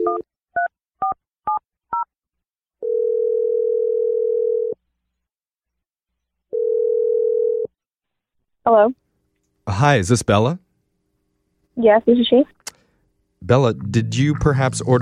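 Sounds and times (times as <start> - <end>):
long steady telephone ringing tones: 2.8 - 4.8, 6.5 - 7.7
speech: 8.7 - 9.0, 9.7 - 10.6, 11.8 - 12.6, 13.4 - 14.9.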